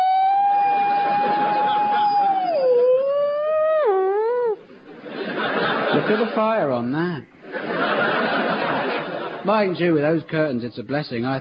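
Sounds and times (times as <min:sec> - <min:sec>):
voice imitating a modern fire engine siren wailing: 0:00.0 - 0:04.6
laughter: 0:00.3 - 0:06.7, 0:07.4 - 0:09.9
speech: 0:06.0 - 0:08.0, 0:09.4 - 0:11.3.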